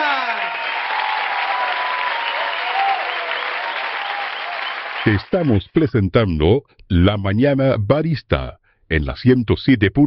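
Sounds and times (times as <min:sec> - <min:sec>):
crowd applauding: 0:00.0 - 0:05.7
speech: 0:05.0 - 0:10.0.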